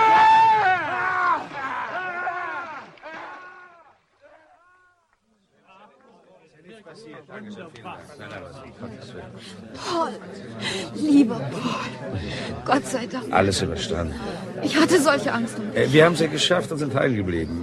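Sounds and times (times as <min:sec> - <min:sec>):
people screaming and shouting for help: 0:00.0 - 0:05.0
speech: 0:06.9 - 0:17.6.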